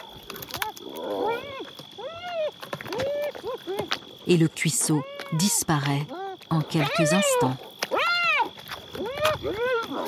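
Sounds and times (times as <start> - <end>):
hyenas whooping over prey: 0.6 - 4.0, 6.1 - 10.0
speech: 4.3 - 7.7, 9.2 - 10.0.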